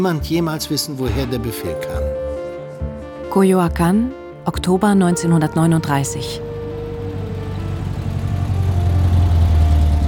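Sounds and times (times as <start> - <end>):
speech: 0.0 - 2.2, 2.8 - 6.5
car engine idling: 5.2 - 10.0.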